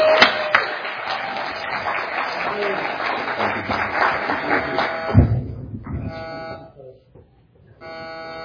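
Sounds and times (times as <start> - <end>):
church audience clapping to welcome a visiting preacher: 0.0 - 6.0.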